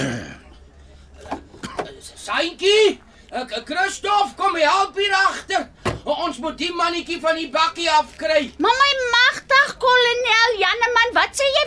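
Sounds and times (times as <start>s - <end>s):
man who smokes coughing: 0.0s - 0.5s, 1.5s - 2.1s
speech: 2.3s - 9.2s, 9.8s - 11.6s.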